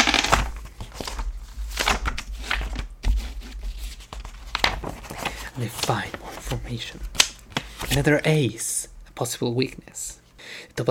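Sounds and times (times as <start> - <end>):
magazine pages being turned: 0.0 - 8.2
speech: 5.6 - 7.2, 7.9 - 10.1.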